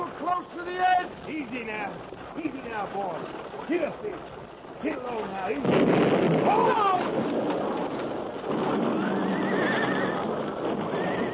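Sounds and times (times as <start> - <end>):
hoofbeats: 0.0 - 5.7, 6.3 - 11.3
constant rumbling clattering din: 0.0 - 11.3
speech: 0.4 - 7.5
horses whinnying shrilly in alarm: 6.3 - 11.3.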